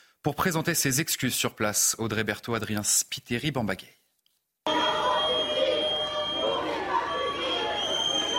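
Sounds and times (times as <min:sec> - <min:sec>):
speech: 0:00.2 - 0:04.0
dense noisy crowd booing and shouting: 0:04.7 - 0:08.3
shrill whistles: 0:04.7 - 0:08.3.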